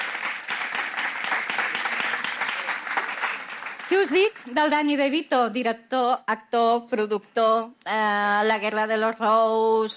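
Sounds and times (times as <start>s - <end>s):
audience applauding: 0.0s - 4.6s
speech: 3.9s - 9.9s.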